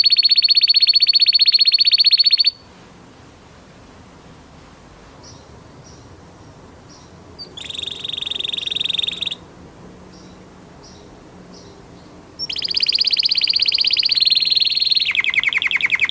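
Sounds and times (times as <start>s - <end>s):
canary trilling: 0.0s - 2.6s, 7.4s - 9.4s, 12.4s - 16.1s.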